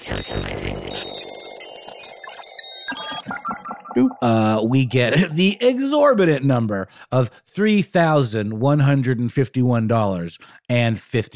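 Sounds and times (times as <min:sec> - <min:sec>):
bright electronic calculator beeps and chiming blips: 0:00.0 - 0:05.8
speech: 0:00.1 - 0:01.2, 0:04.0 - 0:11.3.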